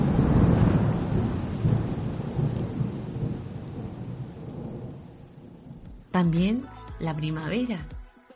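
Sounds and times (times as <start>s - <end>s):
heavy rolling thunder of a winter thunderstorm in Valdivia: 0.0s - 6.1s
steady rain of a winter thunderstorm in Valdivia: 0.0s - 6.6s
speech: 6.2s - 8.0s.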